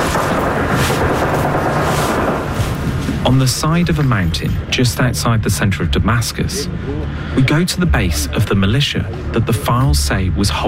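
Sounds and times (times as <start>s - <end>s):
gunfire crackling and booming: 0.0s - 3.2s
dense roaring wall of noise: 0.0s - 10.6s
speech: 3.4s - 10.6s.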